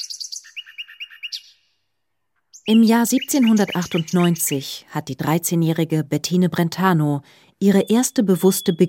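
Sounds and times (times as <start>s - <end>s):
birdsong: 0.0s - 4.9s, 7.6s - 8.8s
speech: 2.7s - 8.8s.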